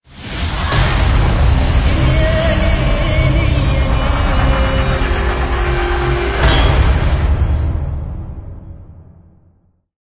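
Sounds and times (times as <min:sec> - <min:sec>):
Arabic vocals: 0:00.2 - 0:07.6
cinematic logo impact: 0:00.2 - 0:09.7.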